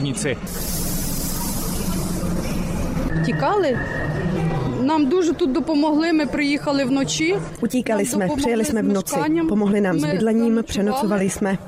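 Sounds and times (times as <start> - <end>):
speech: 0.0 - 0.9, 3.2 - 11.6
railway station ambience rumble at a main station: 0.0 - 7.6
low mechanical drone and broad hiss of railway station: 0.4 - 3.1.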